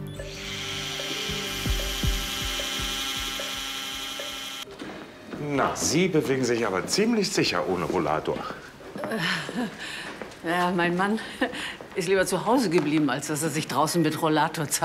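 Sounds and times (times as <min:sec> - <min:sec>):
surgical bone saw grinding through bone during knee surgery: 0:00.3 - 0:04.6
speech: 0:05.6 - 0:14.8.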